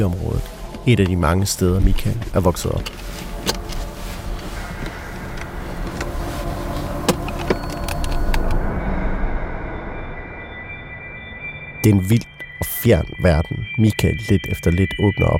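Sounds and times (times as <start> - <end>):
speech: 0.0 - 3.6, 11.8 - 15.3
car engine rumbling while pulling slowly out of parking lot: 0.6 - 10.3
sharp clicks and knocks: 2.8 - 8.5.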